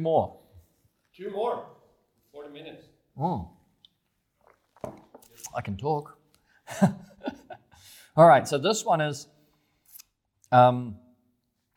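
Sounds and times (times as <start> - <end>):
speech: 0.0 - 0.4, 1.2 - 3.6, 4.8 - 7.5, 8.2 - 9.4, 10.5 - 11.0
person slurping and sipping coffee: 4.4 - 5.6
laughter: 6.7 - 7.8.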